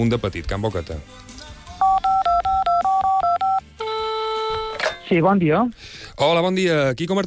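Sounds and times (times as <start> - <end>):
speech: 0.0 - 1.5, 5.1 - 7.2
touch-tone beeps dialing a phone number: 1.8 - 4.8.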